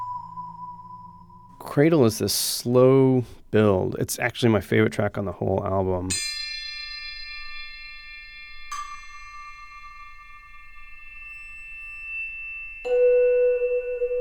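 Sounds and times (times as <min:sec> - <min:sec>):
speech: 0:01.6 - 0:06.3
struck bells ringing in slow percussion music: 0:06.1 - 0:14.1.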